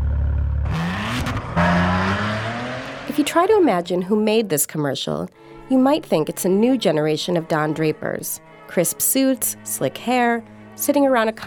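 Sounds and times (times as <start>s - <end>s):
Maserati Italian sports car engine revving hard: 0.0s - 3.1s
speech: 3.2s - 11.4s.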